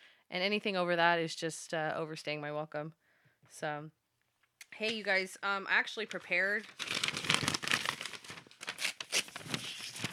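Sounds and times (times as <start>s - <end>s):
speech: 0.3s - 4.0s, 4.7s - 7.3s
paper notes being torn up by hand: 6.6s - 10.1s.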